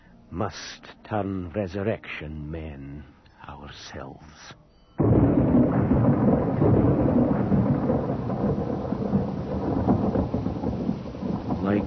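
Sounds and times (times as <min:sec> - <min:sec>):
speech: 0:00.3 - 0:07.3
deep rolling thunder rumble: 0:05.0 - 0:11.8
steady heavy rain: 0:05.0 - 0:11.8.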